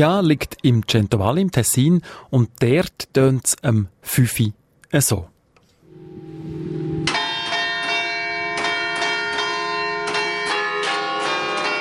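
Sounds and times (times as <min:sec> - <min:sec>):
speech: 0:00.0 - 0:05.3
low hum: 0:05.8 - 0:07.7
carillon ringing from a church bell tower: 0:06.6 - 0:11.7.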